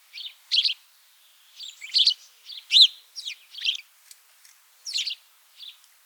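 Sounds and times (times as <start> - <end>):
house sparrow Passer domesticus chirping: 0.1 - 0.8, 1.6 - 3.8.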